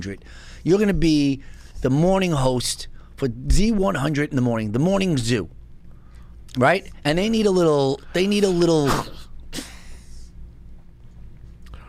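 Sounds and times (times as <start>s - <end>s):
speech: 0.0s - 5.6s, 6.5s - 9.7s
low steady hum: 0.0s - 11.8s
person sneezing: 8.8s - 10.3s.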